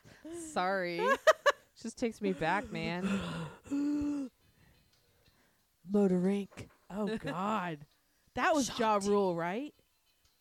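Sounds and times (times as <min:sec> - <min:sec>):
speech: 0:00.3 - 0:03.8, 0:05.9 - 0:09.8
deep hoarse wheezy breath: 0:03.0 - 0:05.6.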